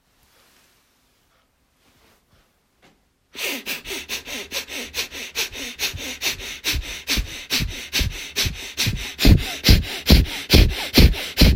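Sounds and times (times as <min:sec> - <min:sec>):
rapid forceful nasal breaths of a breath-of-fire breathing exercise: 0:03.4 - 0:11.5.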